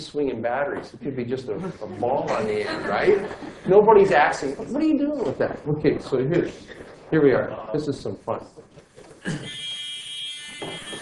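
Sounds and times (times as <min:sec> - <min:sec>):
speech: 0:00.0 - 0:09.4
laughter: 0:01.5 - 0:04.1
small electric buzzer drone: 0:09.3 - 0:11.0.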